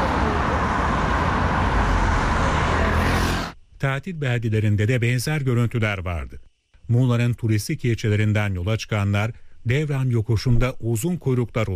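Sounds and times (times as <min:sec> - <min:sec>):
heavy holiday road traffic roar at a highway junction: 0:00.0 - 0:03.6
speech: 0:03.8 - 0:11.7.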